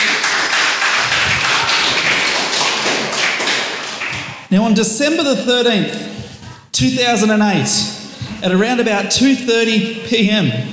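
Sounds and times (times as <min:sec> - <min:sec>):
church audience applauding: 0:00.0 - 0:04.5
speech: 0:04.5 - 0:06.1, 0:06.8 - 0:10.7.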